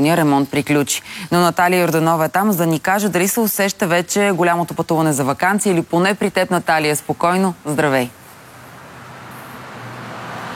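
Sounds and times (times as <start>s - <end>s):
speech: 0.0s - 8.2s
heavy road traffic roar of vehicles passing on a highway: 8.1s - 10.5s.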